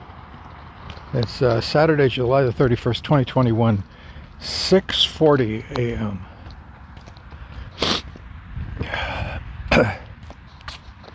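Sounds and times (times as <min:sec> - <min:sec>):
speech: 0:01.1 - 0:06.3, 0:09.8 - 0:10.0
nasal sniffs and snorts from an allergic reaction: 0:07.8 - 0:08.2.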